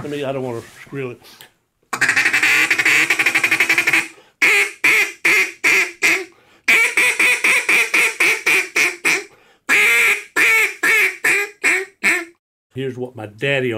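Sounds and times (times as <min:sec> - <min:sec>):
speech: 0:00.0 - 0:03.2, 0:12.8 - 0:13.7
raspy duck call blown as a mating call: 0:01.9 - 0:12.4.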